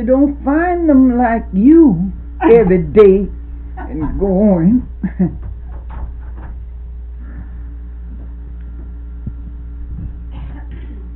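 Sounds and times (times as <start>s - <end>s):
speech: 0.0s - 5.5s
steady low electrical hum: 0.0s - 11.1s
door being closed with soft clunks and handling knocks: 3.9s - 6.6s.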